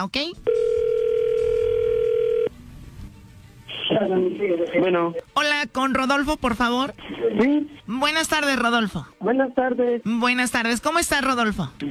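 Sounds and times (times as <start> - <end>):
speech: 0.0 - 0.5, 3.9 - 11.8
telephone line tone as a call goes through: 0.5 - 2.5.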